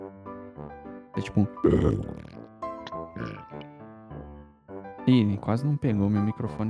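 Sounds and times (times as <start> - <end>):
speech: 1.2 - 2.3, 3.2 - 3.5, 5.1 - 6.6
voice imitating an inhaled film zombie growl: 1.4 - 2.4.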